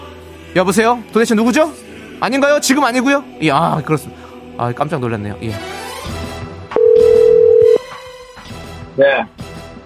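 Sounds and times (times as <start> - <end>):
music: 0.0 - 9.8
speech: 0.5 - 6.2, 9.0 - 9.4
telephone dial tone beep as a call connects: 6.8 - 7.8.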